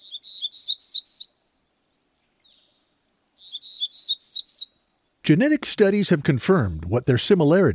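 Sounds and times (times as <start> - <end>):
Townsend's warbler singing high buzzy wheezy notes: 0.0 - 1.4, 3.4 - 4.8
speech: 5.3 - 7.7.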